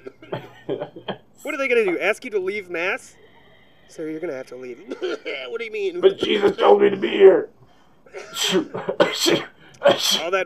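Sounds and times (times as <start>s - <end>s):
person coughing: 0.0s - 1.2s, 4.8s - 7.1s, 8.1s - 10.3s
speech: 1.4s - 3.2s, 3.9s - 10.4s.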